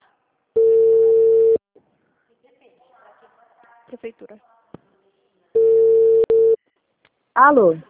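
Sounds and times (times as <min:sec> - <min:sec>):
telephone tone after a dropped call: 0:00.6 - 0:01.6, 0:05.6 - 0:06.6
speech: 0:03.9 - 0:04.6, 0:07.4 - 0:07.8.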